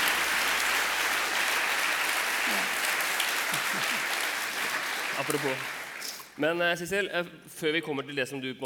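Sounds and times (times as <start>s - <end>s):
crowd applauding: 0.0s - 6.4s
speech: 5.2s - 5.8s, 6.4s - 8.6s.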